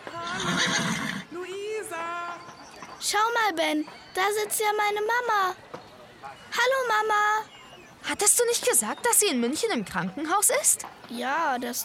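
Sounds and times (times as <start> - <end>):
horse neighing: 0.2 - 1.3
speech: 0.4 - 1.0, 3.0 - 5.7, 6.6 - 11.8.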